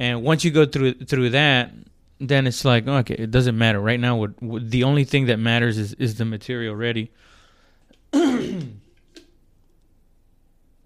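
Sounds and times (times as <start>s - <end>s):
speech: 0.0s - 7.4s, 8.1s - 8.8s
person clearing throat: 8.1s - 9.0s.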